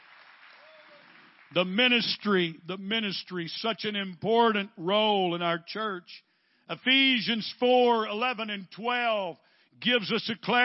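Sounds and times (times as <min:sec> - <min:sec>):
audience applause: 0:00.0 - 0:01.6
person shouting or whooping: 0:00.6 - 0:01.1
speech: 0:01.5 - 0:10.6.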